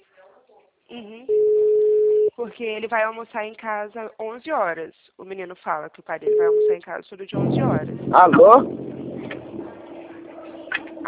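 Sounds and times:
speech: 0.9 - 1.6, 2.4 - 9.0
ringback tone of an outgoing phone call: 1.3 - 2.3, 6.3 - 6.8.

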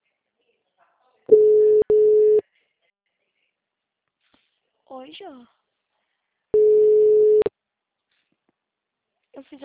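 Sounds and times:
telephone line tone while calling someone: 1.3 - 2.4, 6.6 - 7.5
speech: 5.0 - 5.6, 9.4 - 9.6.

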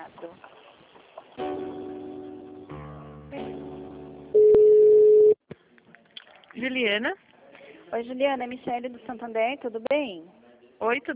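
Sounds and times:
telephone line tones while a call to an HR department is transferred: 4.4 - 5.4
speech: 6.7 - 7.2, 7.9 - 11.1.

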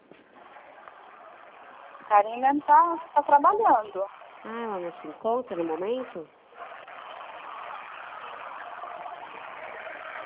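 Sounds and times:
truck passing in the street with loud engine roar: 0.0 - 10.2
speech: 2.1 - 6.4.

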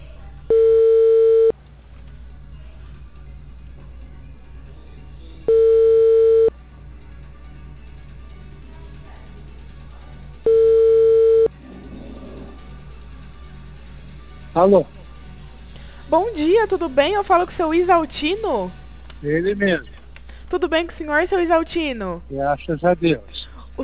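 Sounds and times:
ringback tones on an outgoing telephone call: 0.5 - 1.6, 5.5 - 6.5, 10.4 - 11.5
speech: 14.6 - 15.0, 16.1 - 19.9, 20.5 - 23.8.

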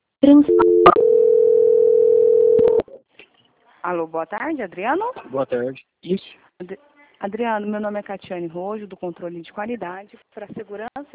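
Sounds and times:
speech: 0.2 - 0.9, 3.9 - 11.1
telephone line tones while a call is transferred: 0.5 - 2.8.

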